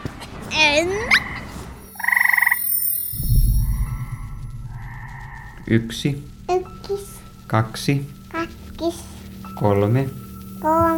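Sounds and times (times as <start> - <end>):
frog giving a rising chirp and buzzy trill: 1.1 - 5.7
several frogs croaking low and rough: 1.1 - 10.7
speech: 5.7 - 6.3, 6.9 - 8.2, 9.6 - 10.9.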